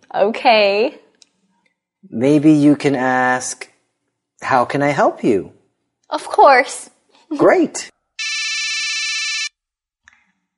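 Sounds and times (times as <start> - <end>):
speech: 0.1 - 1.0, 2.0 - 3.7, 4.4 - 8.0
loud electronic telephone ring: 8.2 - 9.6.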